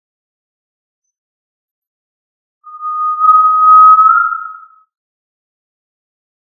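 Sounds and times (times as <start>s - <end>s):
tinamou whistling a single clear even note: 2.7s - 4.8s.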